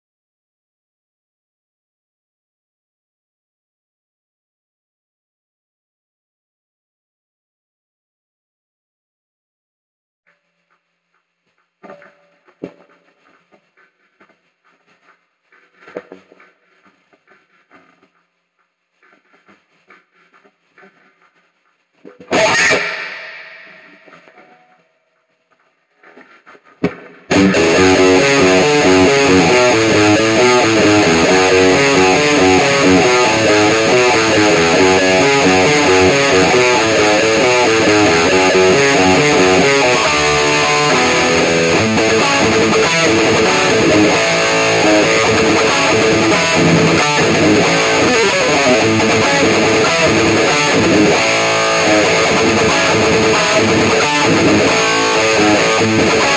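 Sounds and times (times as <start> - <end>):
guitar: 22.1 - 24.4, 27.3 - 56.3.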